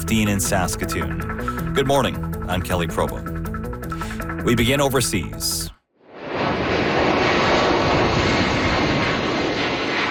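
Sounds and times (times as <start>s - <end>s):
speech: 0.1s - 3.3s, 4.4s - 5.7s
jet airplane taking off on an evacuation flight: 6.1s - 10.0s.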